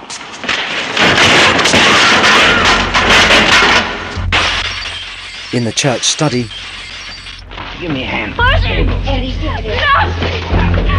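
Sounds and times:
clattering debris from a smashed window: 0:00.0 - 0:10.9
window glass breaking from an arm smashing through: 0:00.5 - 0:07.4
speech: 0:05.5 - 0:06.7, 0:07.8 - 0:10.9.

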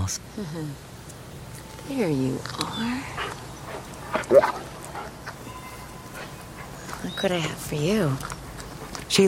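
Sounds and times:
speech: 0:00.1 - 0:00.9, 0:01.9 - 0:03.5, 0:04.2 - 0:05.1, 0:07.0 - 0:08.4
thin German shepherd with matted black coat barking and whimpering: 0:04.1 - 0:04.7.

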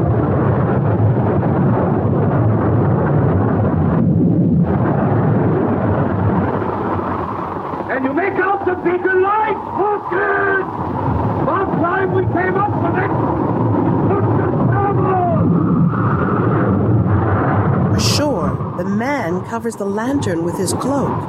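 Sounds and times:
howling wind: 0:00.0 - 0:19.4, 0:20.4 - 0:21.2
huge storm waves crashing over ship decks: 0:00.0 - 0:19.5
indistinct voices: 0:18.0 - 0:21.2
speech: 0:19.6 - 0:21.2.

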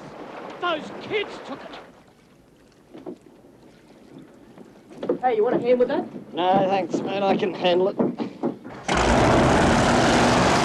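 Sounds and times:
speech: 0:00.7 - 0:01.8, 0:05.3 - 0:08.3
speedboat engine roaring as the boat races toward a marina: 0:08.7 - 0:10.6.

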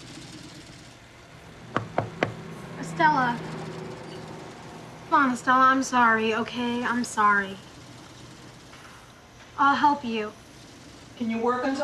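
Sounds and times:
knocking on a wooden office door: 0:01.7 - 0:02.4
speech: 0:03.0 - 0:03.6, 0:05.1 - 0:07.7, 0:09.6 - 0:10.4, 0:11.2 - 0:11.8.

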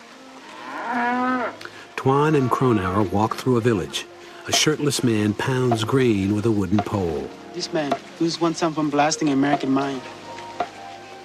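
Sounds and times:
long-horned cow mooing in a dirt pen: 0:00.4 - 0:01.7
speech: 0:02.0 - 0:10.2.

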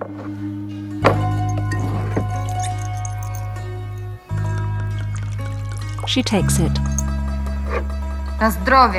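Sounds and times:
steady low droning background: 0:00.1 - 0:08.9
glass clink: 0:01.0 - 0:07.2
drink pouring into a small shot glass: 0:01.6 - 0:03.6, 0:04.4 - 0:07.2
speech: 0:06.1 - 0:07.0, 0:07.8 - 0:08.9.

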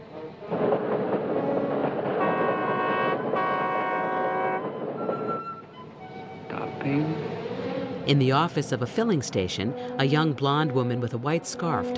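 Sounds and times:
oncoming train rumbling: 0:00.0 - 0:11.9
train horn blaring a multi-tone blast: 0:01.4 - 0:08.0, 0:09.4 - 0:11.9
speech: 0:08.1 - 0:11.9.

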